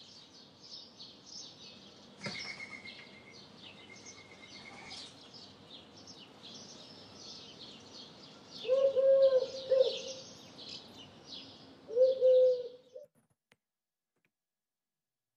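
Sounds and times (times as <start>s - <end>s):
pigeon in a bird feeder cooing: 8.6s - 10.2s, 11.9s - 13.1s.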